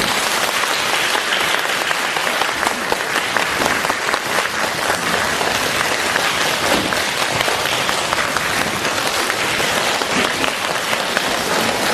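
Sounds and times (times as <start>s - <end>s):
large audience applauding at a Buddhist teaching event: 0.0s - 11.9s.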